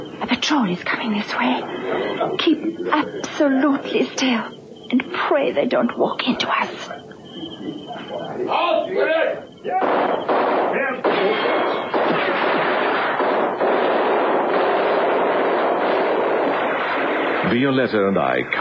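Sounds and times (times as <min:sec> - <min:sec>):
faint indistinct voices: 0:00.0 - 0:13.0
speech: 0:00.4 - 0:07.0, 0:17.5 - 0:18.5
distant gunfire in bursts: 0:09.6 - 0:18.2.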